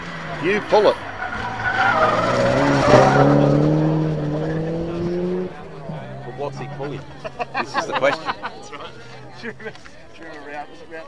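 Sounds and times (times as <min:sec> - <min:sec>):
Porsche 944 tyres squealing as it slides wide: 0:00.0 - 0:08.5
Porsche 944 engine drone: 0:00.0 - 0:10.3
speech: 0:00.3 - 0:01.1, 0:06.5 - 0:11.0
laughter: 0:05.6 - 0:10.6.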